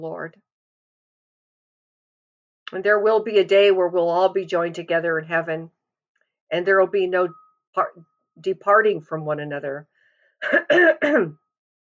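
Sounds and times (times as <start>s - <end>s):
speech: 0.0s - 0.5s, 2.7s - 5.8s, 6.5s - 11.4s
person clearing throat with rough rasping: 10.4s - 11.3s.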